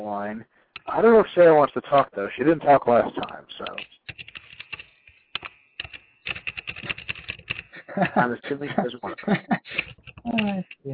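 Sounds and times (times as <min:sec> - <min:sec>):
speech: 0:00.0 - 0:04.0, 0:08.0 - 0:10.9
keyboard typing over a phone line: 0:02.9 - 0:08.6, 0:09.6 - 0:10.8
laughter: 0:07.7 - 0:09.9.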